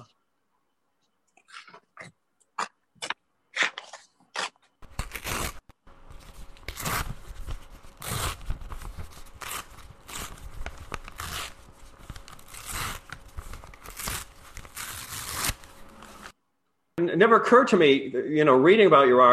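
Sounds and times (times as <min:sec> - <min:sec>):
sheet of paper being slowly torn: 0:03.6 - 0:16.3
speech: 0:17.1 - 0:19.3.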